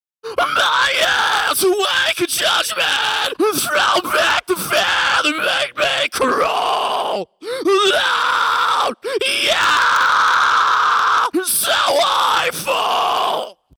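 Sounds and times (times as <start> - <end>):
scream with effects: 0.3 - 13.7.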